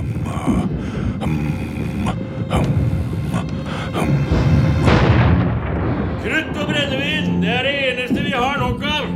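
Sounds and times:
continuous low rumble: 0.0s - 9.1s
cannons firing in a rapid volley: 4.8s - 8.3s.

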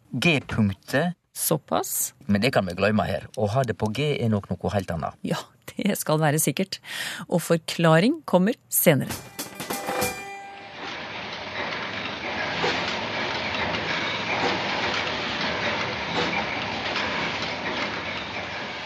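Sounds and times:
speech: 0.2s - 9.4s
high whine: 9.1s - 18.4s
metal clanks: 9.1s - 18.8s
heavy offshore drilling machinery roaring on an oil platform: 10.6s - 18.8s.

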